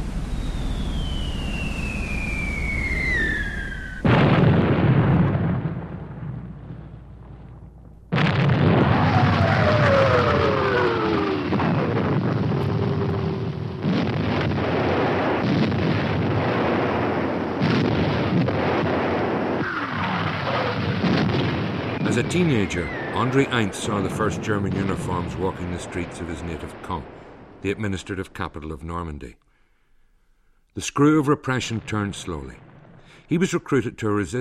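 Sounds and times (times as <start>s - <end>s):
descending whistling tones: 0.0s - 4.1s, 9.1s - 11.5s, 22.0s - 23.8s
artillery bombardment explosions from the D-Day invasion of Normandy: 0.0s - 28.7s, 31.4s - 33.8s
speech: 22.2s - 29.4s, 30.8s - 32.6s, 33.3s - 34.3s.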